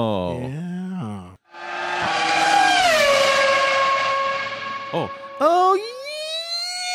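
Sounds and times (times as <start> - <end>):
speech: 0.0 - 0.7
Formula One race car engine whine at the Circuit of the Americas in Austin, Texas: 1.5 - 5.8.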